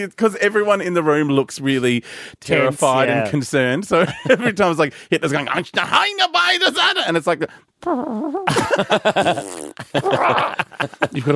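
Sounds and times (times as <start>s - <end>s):
speech: 0.0s - 11.3s
laughter: 4.0s - 4.9s, 8.5s - 11.3s
voice imitating fart noises: 7.8s - 10.6s.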